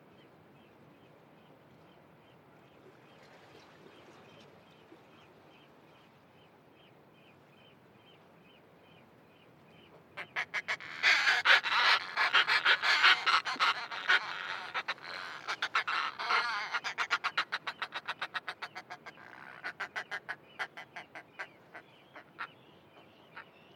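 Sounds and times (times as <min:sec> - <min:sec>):
Northern fulmars cackling at nests on a seabird island cliff edge: 0:10.2 - 0:22.6.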